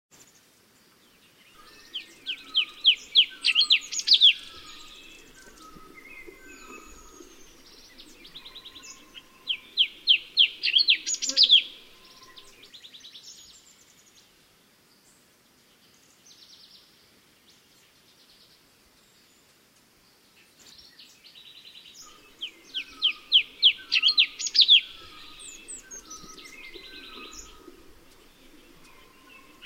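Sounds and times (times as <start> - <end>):
cucak cungko bird calls: 1.6 - 12.7, 22.0 - 29.6.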